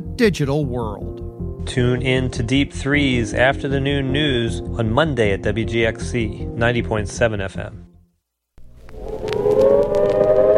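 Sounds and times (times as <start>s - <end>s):
speech: 0.0s - 7.9s
civil defense nuclear attack warning siren wailing: 8.9s - 10.5s.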